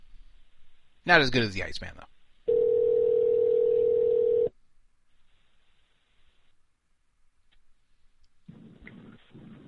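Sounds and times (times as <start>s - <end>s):
speech: 1.0s - 2.2s
telephone ringback tone while a call connects: 2.5s - 4.5s.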